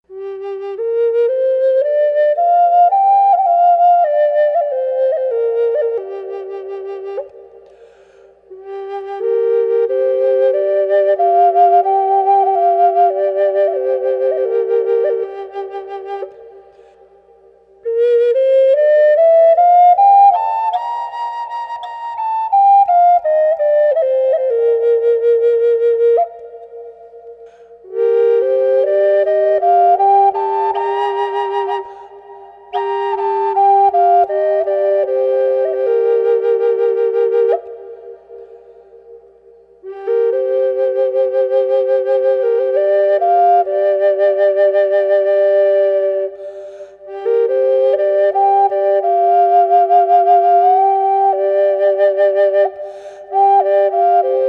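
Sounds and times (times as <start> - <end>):
flute drone in G minor with reverb: 0.0 - 54.4.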